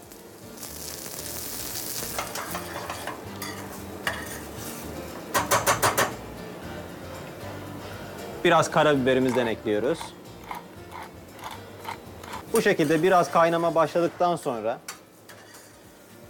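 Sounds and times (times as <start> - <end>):
pan of couscous sizzling as cream and water are added: 0.0 - 6.2, 8.5 - 14.5
speech: 8.4 - 10.2, 12.6 - 14.9.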